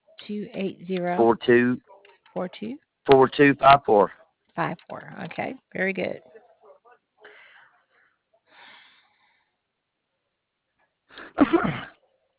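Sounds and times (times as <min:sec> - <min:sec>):
speech: 0:00.3 - 0:06.4, 0:11.4 - 0:11.7
person sneezing: 0:11.2 - 0:12.0.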